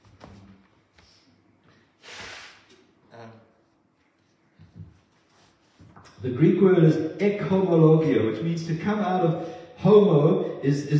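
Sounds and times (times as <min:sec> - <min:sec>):
quiet sniffs: 0:01.0 - 0:02.8
forceful nose blow: 0:02.0 - 0:02.9
speech: 0:06.2 - 0:10.9.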